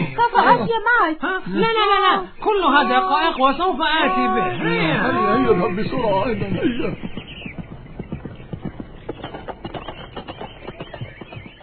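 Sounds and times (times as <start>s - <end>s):
speech: 0.6s - 7.1s
faint bird chirps: 1.9s - 11.6s
horse hooves clip-clopping as the animal trots: 4.2s - 11.6s.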